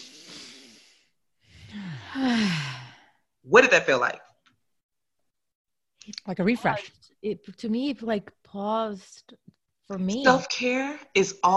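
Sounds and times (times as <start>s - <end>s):
deep breath in: 0.0s - 3.2s
loud exhale ending in a voiced falling sigh: 0.0s - 3.2s
speech: 2.2s - 2.7s, 3.5s - 4.3s, 6.0s - 11.5s.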